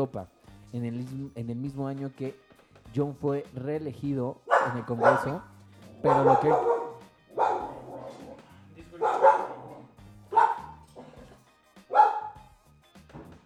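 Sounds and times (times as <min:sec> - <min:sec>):
speech: 0:00.0 - 0:06.7
dog barking: 0:04.5 - 0:12.4.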